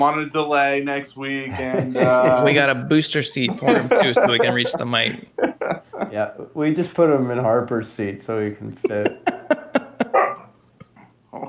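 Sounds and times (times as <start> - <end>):
speech: 0.0 - 9.6
laughter: 1.5 - 6.3, 8.6 - 10.4
dog barking: 10.0 - 10.5.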